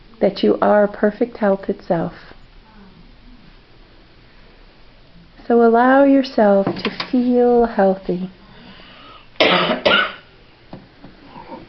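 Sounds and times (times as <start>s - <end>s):
speech: 0.2s - 2.4s, 5.5s - 8.4s
person coughing: 9.4s - 10.3s.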